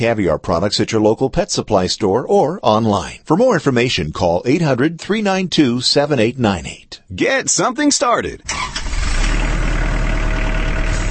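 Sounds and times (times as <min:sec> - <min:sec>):
speech: 0:00.0 - 0:08.8
compact tractor diesel engine running as it rolls off an assembly line: 0:08.5 - 0:11.0.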